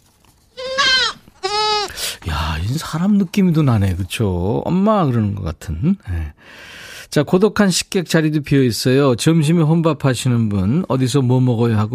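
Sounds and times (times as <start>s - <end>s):
goat bleating: 0.6s - 2.0s
speech: 2.7s - 11.9s.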